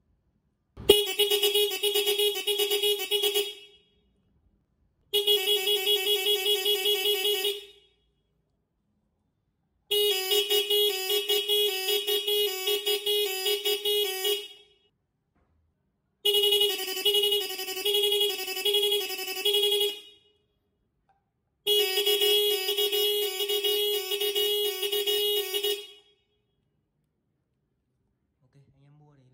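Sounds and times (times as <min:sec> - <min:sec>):
motorbike horn beeping continuously: 0:00.8 - 0:03.8, 0:05.1 - 0:07.9, 0:09.9 - 0:14.7, 0:16.2 - 0:20.3, 0:21.7 - 0:26.2.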